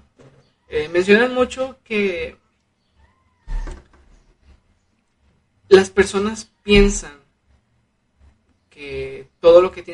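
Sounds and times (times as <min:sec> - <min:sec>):
speech: 0:00.7 - 0:02.4, 0:05.7 - 0:07.2, 0:08.8 - 0:09.9
cat meowing, wanting to go out: 0:03.0 - 0:03.9.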